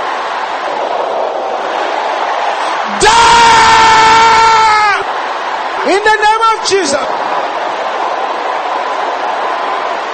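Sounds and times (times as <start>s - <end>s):
large crowd of men shouting together in a church: 0.0s - 10.1s.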